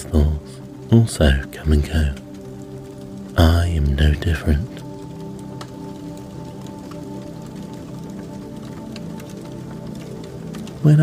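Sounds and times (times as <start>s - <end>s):
fire crackling with pops and snaps: 0.0s - 11.0s
speech: 0.9s - 2.2s, 3.4s - 4.8s, 10.8s - 11.0s.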